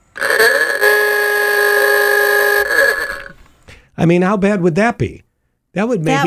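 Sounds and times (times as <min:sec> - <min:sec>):
ahooga horn blast: 0:00.0 - 0:03.4
speech: 0:04.0 - 0:05.2, 0:05.8 - 0:06.2.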